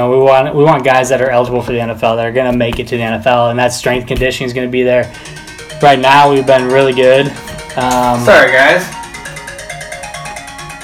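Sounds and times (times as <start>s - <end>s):
speech: 0.0s - 9.0s
phone ringtone from incoming call: 5.0s - 10.8s.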